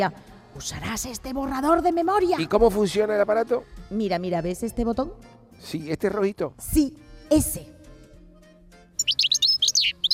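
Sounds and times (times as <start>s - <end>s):
speech: 0.0s - 7.8s
bird chirping in high-pitched tweets: 9.0s - 10.1s.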